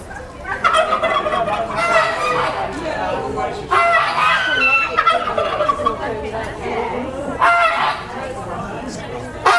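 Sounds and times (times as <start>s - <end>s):
geese honking at a bird show: 0.0s - 6.2s, 7.3s - 8.3s, 9.4s - 9.5s
turkey-like gobbling at a bird show: 0.0s - 6.3s, 7.3s - 8.4s, 9.4s - 9.5s
chickens clucking at a bird show: 0.0s - 9.5s
murmur of people at a bird show: 0.0s - 9.5s.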